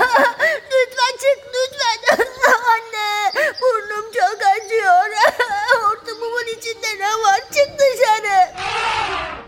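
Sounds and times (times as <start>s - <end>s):
voice imitating an elephant crying in pain: 0.0s - 9.4s.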